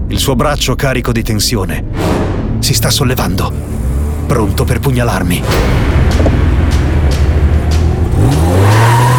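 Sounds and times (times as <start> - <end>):
speech: 0.1 - 6.3
car engine roaring and revving hard: 5.5 - 9.1
car tires squealing and skidding as the car swerves: 8.1 - 9.1.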